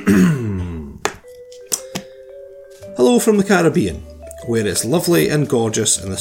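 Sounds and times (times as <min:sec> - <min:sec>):
person clearing throat: 0:00.0 - 0:01.0
speech: 0:03.0 - 0:06.2.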